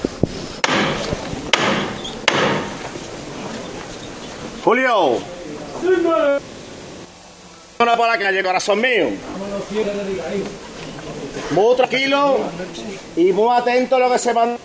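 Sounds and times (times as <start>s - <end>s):
foreman's hammer knocker striking a procession float: 0.6s - 3.0s
voices calling out: 0.6s - 14.6s
murmuring crowd: 1.0s - 7.8s, 8.4s - 14.6s
speech: 4.7s - 6.6s, 7.8s - 10.7s, 11.4s - 14.6s.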